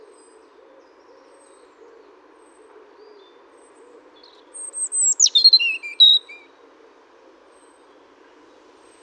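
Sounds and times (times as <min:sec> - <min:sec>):
European robin singing: 0:04.6 - 0:06.4.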